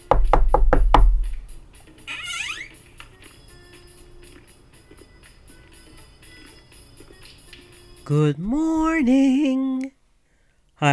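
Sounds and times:
sharp knocks on an apartment door: 0.0 - 1.4
faint creaking squeak of a door opening: 2.1 - 2.8
speech: 8.1 - 9.9.

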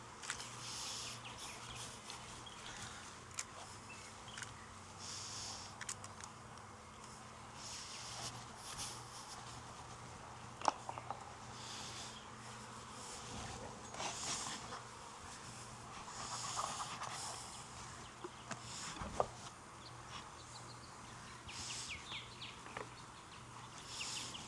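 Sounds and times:
honeybees buzzing around an open hive: 0.0 - 24.4.

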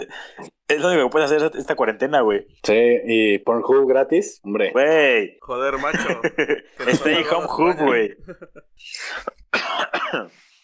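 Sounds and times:
speech: 0.0 - 10.5
laughter: 5.5 - 9.4
person coughing hard with harsh raspy bursts: 8.4 - 10.4.

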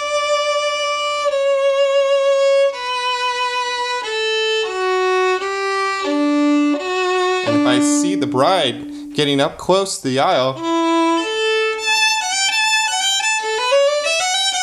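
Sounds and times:
classical wedding-ceremony melody played on a single instrument: 0.0 - 9.6, 10.6 - 14.6
speech: 7.8 - 10.7.

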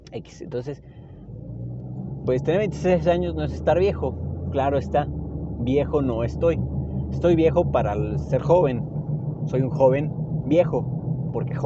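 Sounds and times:
car engine rumbling and revving: 0.0 - 11.6
speech: 0.1 - 1.0, 2.3 - 8.9, 9.5 - 11.6.

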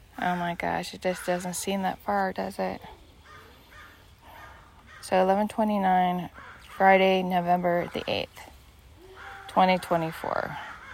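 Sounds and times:
soft outdoor background in a park: 0.0 - 10.9
speech: 0.2 - 3.0, 5.0 - 8.5, 9.5 - 10.7
crows cawing in a park at a nature center in Southern California: 3.2 - 5.2, 6.3 - 6.9, 9.0 - 10.9.

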